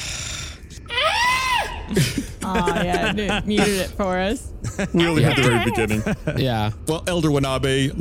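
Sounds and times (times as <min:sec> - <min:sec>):
laughter: 0:01.9 - 0:03.9, 0:04.6 - 0:06.5
speech: 0:01.9 - 0:07.9
person imitating a screaming goat: 0:05.0 - 0:06.0.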